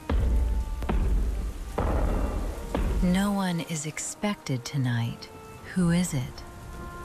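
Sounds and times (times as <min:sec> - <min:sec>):
deep continuous rumble of thunder: 0:00.0 - 0:03.8
steady rain hissing: 0:00.0 - 0:07.0
speech: 0:03.0 - 0:06.5.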